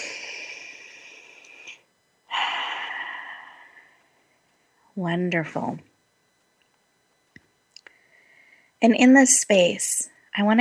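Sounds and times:
group taking a deep breath together in a guided exercise: 0.0s - 4.0s
speech: 5.0s - 5.9s, 8.8s - 10.5s.

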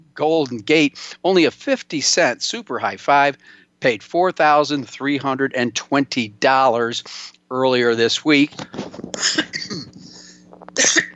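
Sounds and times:
speech: 0.2s - 10.0s, 10.8s - 11.1s
person coughing: 9.2s - 11.1s.

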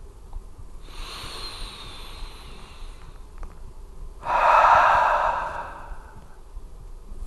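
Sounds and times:
deep breath in and out during a guided meditation: 0.8s - 3.4s, 4.2s - 6.5s.

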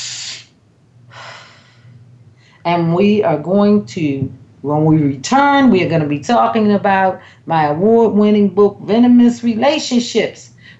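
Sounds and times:
deep breath: 1.1s - 2.6s
speech: 2.6s - 10.5s.

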